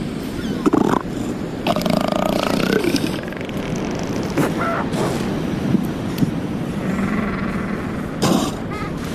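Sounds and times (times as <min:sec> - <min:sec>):
wind: 0:00.0 - 0:09.1
elephant seals grunting, snorting and bellowing: 0:00.4 - 0:05.4, 0:06.8 - 0:09.1.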